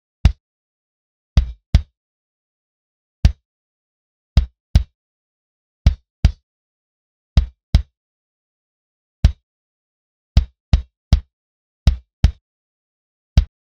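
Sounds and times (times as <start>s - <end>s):
modern gated kick drum: 1.4s - 1.9s, 4.4s - 4.9s, 5.9s - 6.4s, 7.4s - 7.9s, 10.4s - 11.3s, 11.9s - 12.4s.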